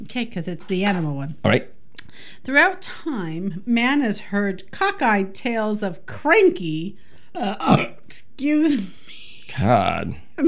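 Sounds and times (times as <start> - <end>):
speech: 0.1 - 10.4
person burping: 7.4 - 8.1.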